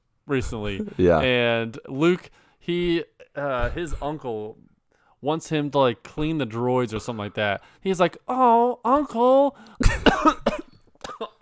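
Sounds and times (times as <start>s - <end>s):
speech: 0.3s - 10.4s
man coughing: 9.8s - 11.4s.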